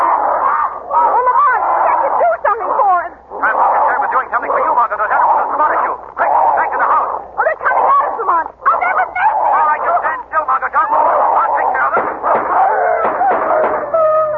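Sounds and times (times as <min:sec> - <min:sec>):
large dogs snarling, growling and yelping in an attack: 0:00.0 - 0:14.2.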